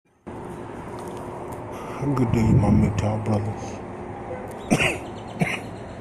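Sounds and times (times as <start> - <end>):
speech: 2.0 - 3.8, 4.7 - 5.0
person coughing: 4.7 - 5.6.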